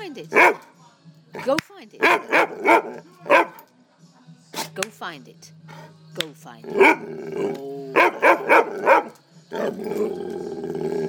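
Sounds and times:
speech: 0:00.1 - 0:00.7, 0:01.4 - 0:03.1, 0:05.0 - 0:09.0, 0:09.6 - 0:10.6
dog barking: 0:00.3 - 0:00.7, 0:02.0 - 0:03.7, 0:06.8 - 0:07.1, 0:07.9 - 0:09.2
dog growling: 0:01.4 - 0:03.6, 0:06.6 - 0:11.0
dog's rough growling howl: 0:06.6 - 0:11.0.

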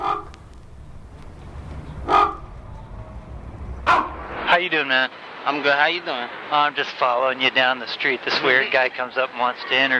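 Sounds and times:
raven croaking: 0:00.0 - 0:04.5
low outdoor rumble: 0:00.0 - 0:07.1
speech: 0:04.6 - 0:09.9.

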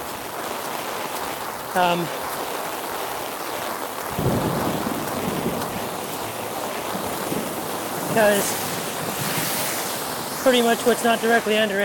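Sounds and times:
heavy rain pouring on an umbrella: 0:00.0 - 0:11.8
speech: 0:01.8 - 0:02.2, 0:08.2 - 0:08.6, 0:10.4 - 0:11.8
deep rumble of thunder: 0:04.0 - 0:11.0.

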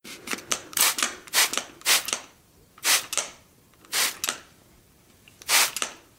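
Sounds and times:
spray bottle squirted in short sharp hissing bursts: 0:00.8 - 0:02.2, 0:02.8 - 0:03.3, 0:03.9 - 0:04.3, 0:05.4 - 0:05.9.

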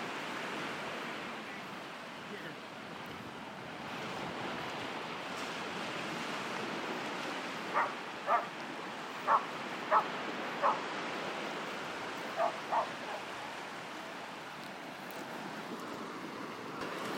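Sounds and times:
waves breaking on a beach: 0:00.0 - 0:17.1
sheepdog barking on a beach: 0:07.7 - 0:08.5, 0:09.2 - 0:10.8, 0:12.4 - 0:13.3.

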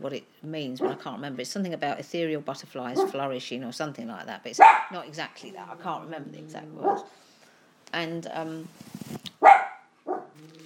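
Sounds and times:
speech: 0:00.0 - 0:07.2, 0:07.9 - 0:09.2
dog barking at a window: 0:03.0 - 0:03.2, 0:04.6 - 0:05.0, 0:06.8 - 0:07.1, 0:09.4 - 0:10.4.

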